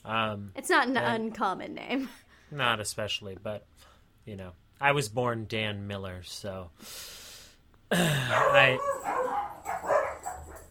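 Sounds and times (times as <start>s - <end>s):
speech: 0.1s - 7.2s, 7.9s - 9.5s
dog barking and yelping: 8.2s - 10.7s.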